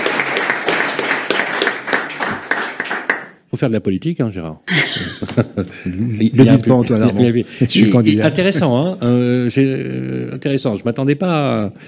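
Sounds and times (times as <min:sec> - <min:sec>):
audience applauding for a company president: 0:00.0 - 0:03.4
speech: 0:03.6 - 0:11.8
laughter: 0:04.7 - 0:10.0.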